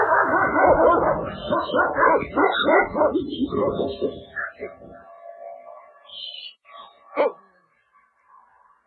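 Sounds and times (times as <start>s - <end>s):
dog barking and yipping excitedly: 0.0s - 4.8s, 6.8s - 7.4s.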